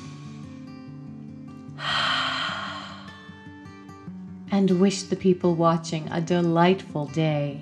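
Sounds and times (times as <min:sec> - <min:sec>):
deep breath in and out: 0:01.8 - 0:03.3
speech: 0:04.6 - 0:07.6.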